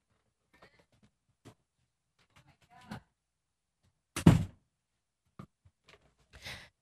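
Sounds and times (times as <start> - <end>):
door pushed shut with a solid thud: 4.2 - 4.6.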